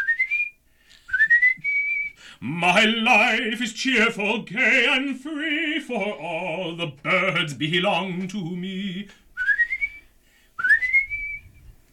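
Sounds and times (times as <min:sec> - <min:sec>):
person whistling: 0:00.0 - 0:02.3, 0:09.4 - 0:11.7
speech: 0:02.4 - 0:09.2.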